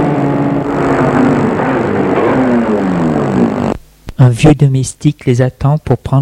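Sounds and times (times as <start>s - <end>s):
car engine humming as the vehicle rolls along: 0.0s - 4.2s
speech: 4.2s - 6.2s.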